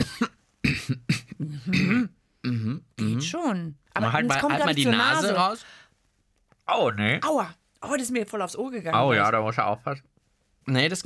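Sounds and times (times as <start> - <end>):
coughing with the mouth kept closed: 0.0 - 3.2
speech: 3.4 - 5.8, 6.7 - 11.0.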